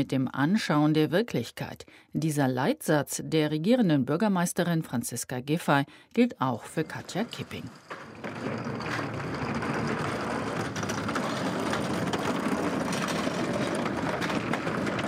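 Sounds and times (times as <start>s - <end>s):
speech: 0.0s - 9.1s
wheeled carts rolling over a hard floor into an airport hangar: 6.6s - 15.0s.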